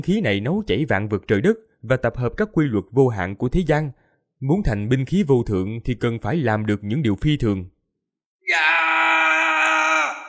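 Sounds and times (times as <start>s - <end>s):
speech: 0.0s - 7.8s
terrified scream: 8.4s - 10.2s.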